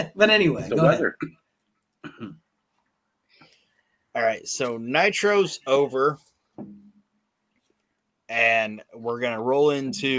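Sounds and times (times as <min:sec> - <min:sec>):
speech: 0:00.0 - 0:01.4, 0:02.1 - 0:02.4, 0:04.2 - 0:06.8, 0:08.3 - 0:10.1
person coughing: 0:02.0 - 0:02.4.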